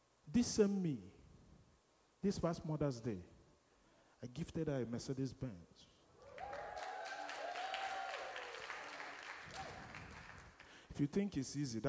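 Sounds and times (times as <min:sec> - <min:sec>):
speech: 0:00.3 - 0:01.1, 0:02.2 - 0:03.3, 0:04.2 - 0:05.9, 0:11.0 - 0:11.8
audience clapping: 0:06.2 - 0:10.9.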